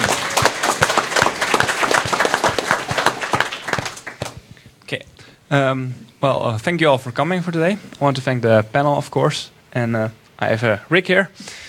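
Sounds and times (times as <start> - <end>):
audience applause at a panel discussion: 0.0 - 4.4
speech: 4.9 - 11.6.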